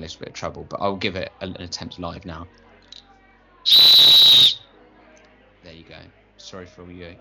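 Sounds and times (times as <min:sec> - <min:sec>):
speech: 0:00.0 - 0:03.0, 0:03.6 - 0:04.6, 0:05.6 - 0:07.1
plastic rescue howler whistle blast: 0:03.7 - 0:04.6.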